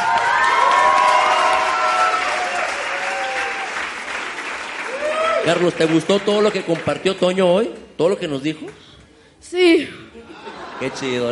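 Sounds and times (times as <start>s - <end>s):
high-pitched cheers and whoops: 0.0s - 3.9s, 4.8s - 5.6s
audience applause: 0.0s - 7.3s
speech: 5.5s - 11.2s
laughter: 10.2s - 11.2s.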